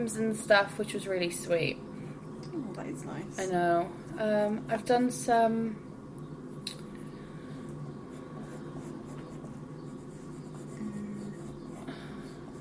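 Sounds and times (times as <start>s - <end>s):
speech: 0.0s - 1.9s, 2.5s - 5.9s
pen or pencil scratching on paper: 8.1s - 12.6s.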